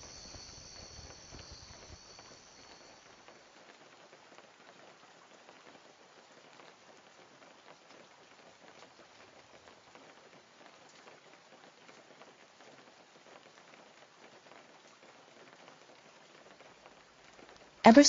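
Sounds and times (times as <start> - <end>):
steady rain pattering on a surface at night: 0.0 - 18.0
speech: 17.9 - 18.0.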